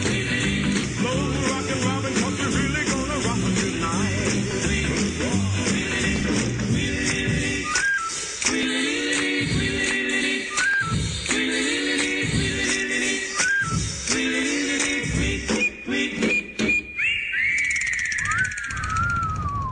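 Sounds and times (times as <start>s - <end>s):
upbeat music: 0.0s - 18.9s
person whistling a bright melody: 7.6s - 8.4s, 10.4s - 11.2s, 13.3s - 14.0s, 15.5s - 19.6s.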